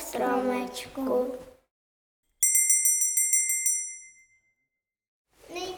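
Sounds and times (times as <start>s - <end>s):
speech: 0.1s - 1.5s
small bell ringing rapidly: 2.4s - 4.8s.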